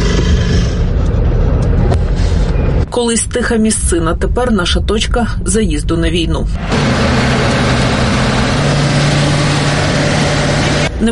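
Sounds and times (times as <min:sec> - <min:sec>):
engine of an armoured Humvee fitted with welded grilles and chains running: 0:00.0 - 0:02.8, 0:06.5 - 0:11.1
speech: 0:03.0 - 0:07.7.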